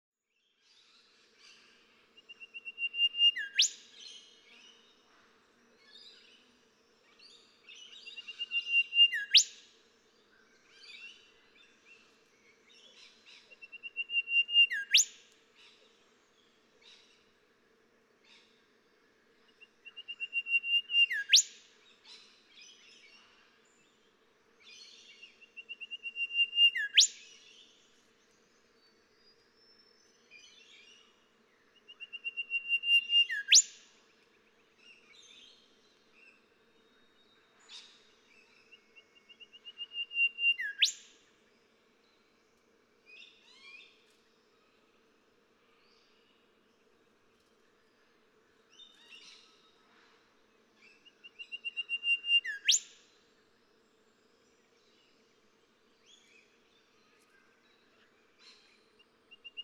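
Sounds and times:
golden whistler singing: 0:02.2 - 0:04.2, 0:05.8 - 0:09.6, 0:10.4 - 0:15.2, 0:19.4 - 0:24.1, 0:24.7 - 0:42.5, 0:50.8 - 0:53.0, 0:53.8 - 0:59.6.

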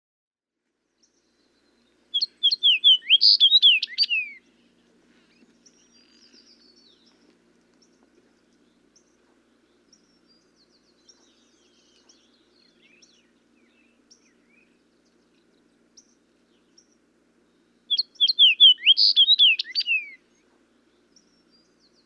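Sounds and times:
fox sparrow: 0:01.0 - 0:22.0.

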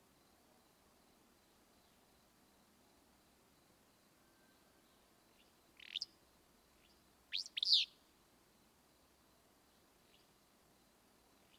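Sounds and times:
willow flycatcher song: 0:05.4 - 0:06.1, 0:06.8 - 0:08.0.

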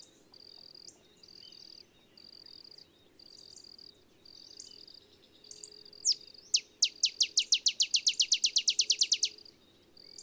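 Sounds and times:
male olive sparrow singing in early morning in Texas: 0:00.0 - 0:10.2.

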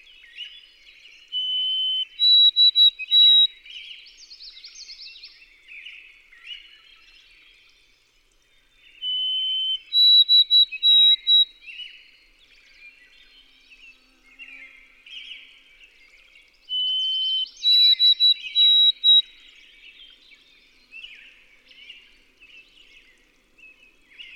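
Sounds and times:
background chirping: 0:00.0 - 0:24.3
White-throated sparrow whistled song: 0:01.2 - 0:05.3, 0:08.9 - 0:12.1, 0:16.6 - 0:20.0.

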